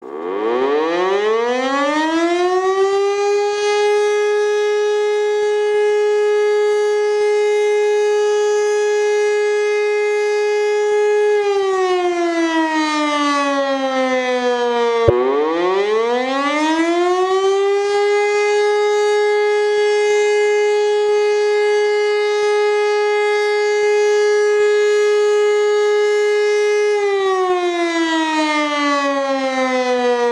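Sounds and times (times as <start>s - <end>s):
siren alarm: 0.0s - 30.3s.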